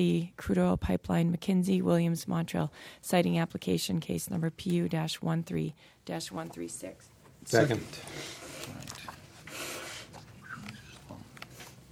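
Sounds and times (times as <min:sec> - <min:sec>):
speech: 0:00.0 - 0:08.9
person sniffing and snorting to clear a stuffy nose: 0:09.4 - 0:11.0.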